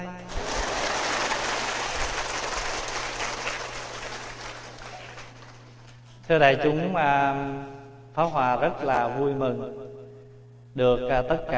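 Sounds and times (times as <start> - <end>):
audience applause: 0.3 - 5.8
speech: 6.3 - 9.8, 10.8 - 11.5.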